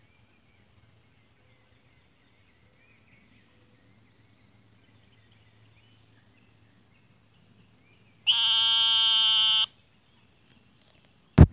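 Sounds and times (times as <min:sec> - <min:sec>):
Eastern narrowmouth toad giving a nasal sheep-like buzzing bleat: 0:08.3 - 0:09.7.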